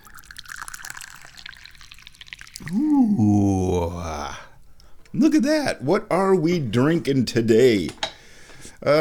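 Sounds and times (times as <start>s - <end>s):
Dahong Pao tea pouring into a cup: 0.0s - 2.8s
speech: 2.6s - 4.4s, 5.1s - 8.0s, 8.8s - 8.9s.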